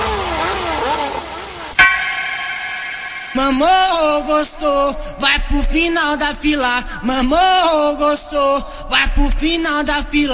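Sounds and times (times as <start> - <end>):
motorcycle engines revving: 0.0 - 1.8
steady tone: 1.8 - 5.2
sharp hit: 1.8 - 5.3
speech: 3.4 - 10.3.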